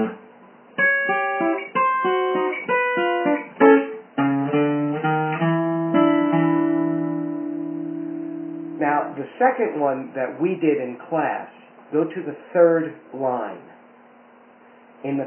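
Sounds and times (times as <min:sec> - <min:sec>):
guitar playing a turnaround ending on a C7 shape at the 5th fret: 0:00.0 - 0:10.6
speech: 0:09.6 - 0:13.7, 0:15.0 - 0:15.2.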